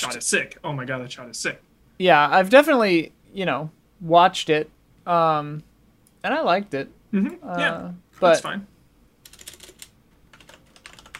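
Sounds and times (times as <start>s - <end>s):
speech: 0.0s - 8.7s
computer keyboard typing a note: 9.2s - 11.1s.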